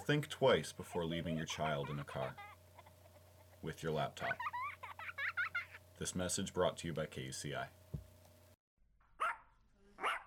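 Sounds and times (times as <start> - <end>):
speech: 0.1 - 2.5, 3.6 - 4.5, 6.0 - 7.8
dog barking: 9.2 - 10.2.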